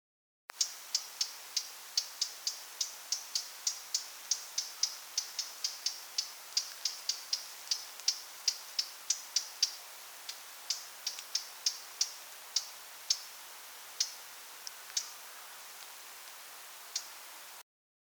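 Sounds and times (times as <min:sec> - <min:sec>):
Eurasian blackcap Sylvia atricapilla giving dry ticking calls: 0:00.5 - 0:17.6.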